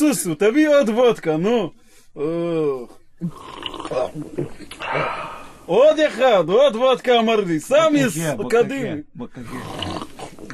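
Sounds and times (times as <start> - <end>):
speech: 0.0 - 10.5
person imitating a snore: 2.2 - 5.6, 9.5 - 10.4.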